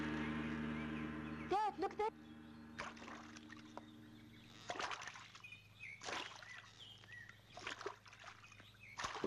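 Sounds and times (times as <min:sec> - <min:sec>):
steady low hum: 0:00.0 - 0:07.5
faint bird chirps: 0:00.2 - 0:09.2
speech: 0:01.8 - 0:03.0
oars or paddles dipping into water: 0:02.7 - 0:09.2.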